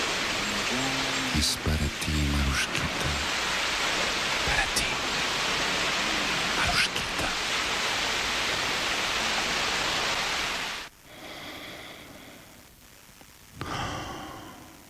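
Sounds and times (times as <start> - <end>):
ocean waves breaking: 0.0 - 10.9
speech: 0.7 - 3.4.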